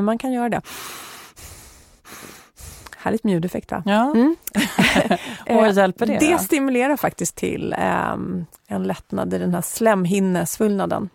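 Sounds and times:
speech: 0:00.0 - 0:01.1, 0:03.0 - 0:11.1
breathing in and out through the nose: 0:00.6 - 0:03.0
laughter: 0:04.6 - 0:05.6.

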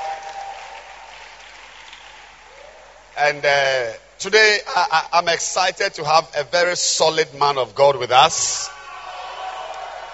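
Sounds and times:
audience clapping hands: 0:00.0 - 0:03.3
speech: 0:03.2 - 0:08.8.

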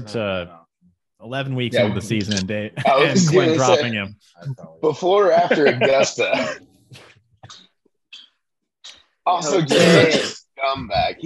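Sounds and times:
speech: 0:00.0 - 0:00.6, 0:01.2 - 0:07.1, 0:09.3 - 0:11.2
laughter: 0:02.7 - 0:03.8, 0:05.0 - 0:07.1
person coughing into a microphone: 0:06.2 - 0:07.6, 0:09.5 - 0:10.4.

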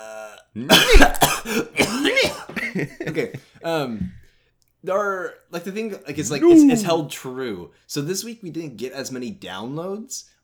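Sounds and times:
speech: 0:00.5 - 0:01.7, 0:02.3 - 0:04.2, 0:04.8 - 0:10.4
person coughing to clear the throat: 0:00.7 - 0:02.9, 0:06.4 - 0:06.9.

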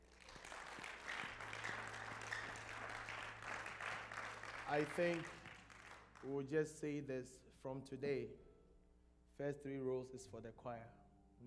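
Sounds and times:
church audience clapping: 0:00.0 - 0:06.3
speech: 0:04.7 - 0:05.4, 0:06.2 - 0:08.5, 0:09.4 - 0:11.0.

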